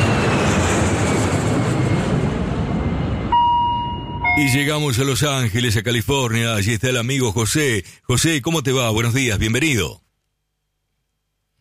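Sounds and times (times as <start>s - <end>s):
Boeing airliner taking off: 0.0s - 5.6s
high electronic tone: 3.3s - 5.2s
speech: 4.4s - 10.0s.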